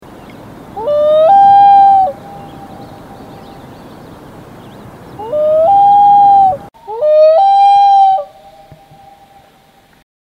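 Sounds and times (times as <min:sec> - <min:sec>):
loon calling at dusk: 0:00.8 - 0:02.8, 0:05.2 - 0:09.5.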